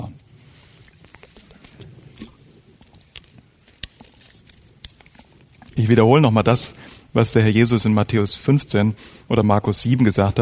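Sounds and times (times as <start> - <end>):
person sipping water: 0.1 - 5.8
soft swallow: 0.4 - 5.8
speech: 5.8 - 10.4.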